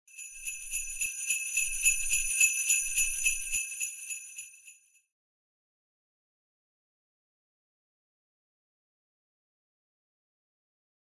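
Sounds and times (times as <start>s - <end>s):
sleigh bells jingling: 0.1s - 4.9s.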